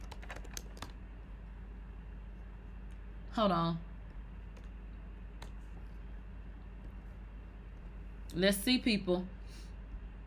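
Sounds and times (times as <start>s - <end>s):
typing on a computer keyboard: 0.0s - 1.0s
low steady hum: 0.0s - 10.2s
speech: 3.4s - 3.9s, 8.3s - 9.7s.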